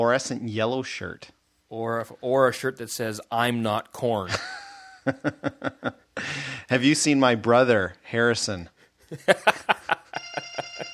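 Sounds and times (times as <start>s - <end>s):
speech: 0.0s - 9.7s
laughter: 4.3s - 6.0s, 9.1s - 10.9s
mobile phone ringing with an electronic ringtone: 9.8s - 10.9s.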